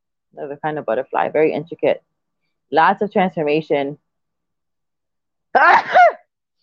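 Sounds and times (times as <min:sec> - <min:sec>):
speech: 0:00.4 - 0:02.1, 0:02.7 - 0:04.0, 0:05.5 - 0:06.0
person sneezing: 0:05.6 - 0:06.2.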